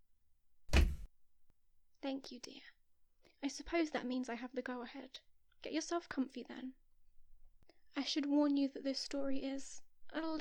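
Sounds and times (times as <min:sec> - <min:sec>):
heavy dull knock on wood: 0:00.7 - 0:01.1
speech: 0:02.1 - 0:02.8, 0:03.4 - 0:06.8, 0:07.9 - 0:10.4.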